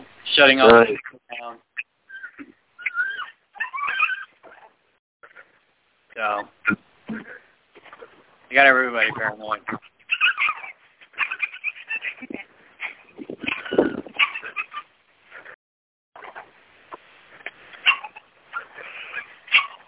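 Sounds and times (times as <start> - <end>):
speech: 0.4 - 1.6, 6.2 - 6.8, 8.5 - 9.9
puppies whimpering and whining: 2.1 - 5.5, 9.8 - 15.6, 17.8 - 19.8.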